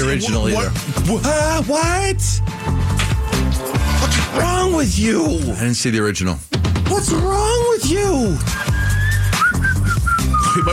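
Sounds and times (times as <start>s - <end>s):
speech: 0.1s - 8.7s
person whistling a short melodic tune: 8.5s - 10.7s.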